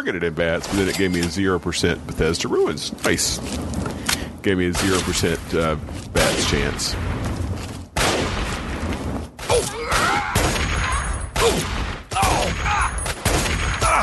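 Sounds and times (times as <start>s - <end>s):
speech: 0.0s - 7.2s
video game gunfire: 6.2s - 14.0s.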